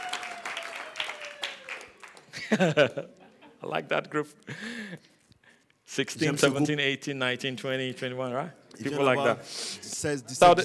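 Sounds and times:
audience clapping hands: 0.0s - 2.8s
laughter: 2.3s - 3.9s
speech: 2.5s - 5.1s, 5.9s - 10.6s.

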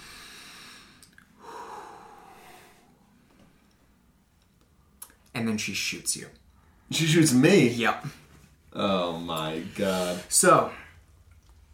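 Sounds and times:
voice imitating a sharp inhale: 0.0s - 3.0s
faint noise: 0.0s - 11.7s
speech: 5.4s - 8.2s, 8.8s - 10.8s.

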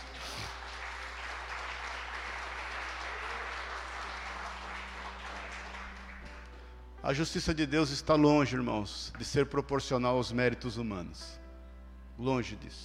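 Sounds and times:
crowd applauding: 0.0s - 6.7s
speech: 7.0s - 11.4s, 12.2s - 12.8s.

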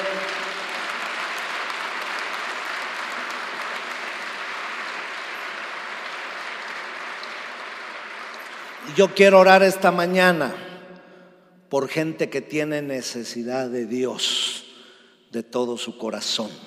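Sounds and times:
large congregation applauding: 0.0s - 10.6s
speech: 8.9s - 10.7s, 11.7s - 14.6s, 15.3s - 16.6s.

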